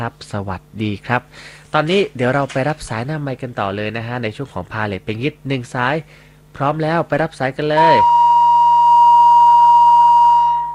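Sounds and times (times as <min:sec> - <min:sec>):
speech: 0:00.0 - 0:08.2
phone line disconnected tone after a dropped call: 0:07.8 - 0:10.7.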